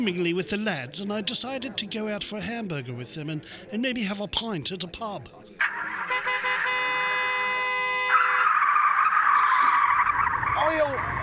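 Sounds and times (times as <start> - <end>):
speech: 0.0 - 7.0, 10.7 - 11.2
car tyres screeching while skidding on oil on the road: 5.6 - 11.2.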